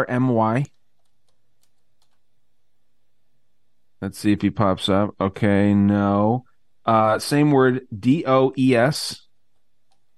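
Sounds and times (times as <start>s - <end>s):
speech: 0.0s - 0.7s, 4.0s - 9.2s
quiet steady hum: 0.0s - 10.1s
typing on a computer keyboard: 0.6s - 2.2s.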